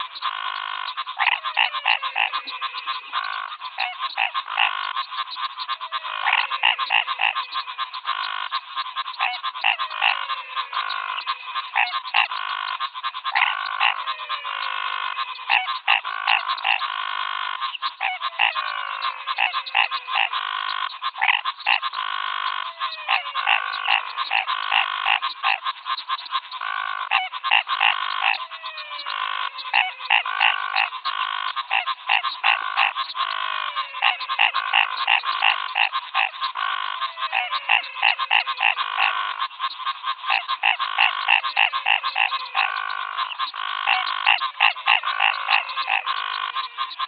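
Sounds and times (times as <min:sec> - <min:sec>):
frogs calling in the Pantanal in Brazil: 0:00.0 - 0:47.0.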